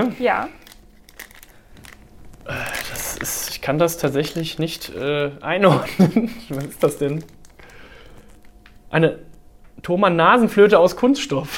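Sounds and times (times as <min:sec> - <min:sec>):
speech: 0:00.0 - 0:00.6, 0:02.5 - 0:07.4, 0:08.9 - 0:11.5
plastic bag crinkling as a plastic nose flute is pulled out: 0:00.3 - 0:09.4
laughter: 0:05.6 - 0:06.6.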